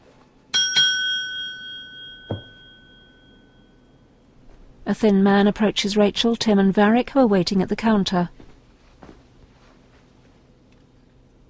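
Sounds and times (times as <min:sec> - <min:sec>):
shiny bell rung on a motel reception desk: 0:00.5 - 0:04.3
dull knock: 0:02.3 - 0:02.6
speech: 0:04.9 - 0:08.4.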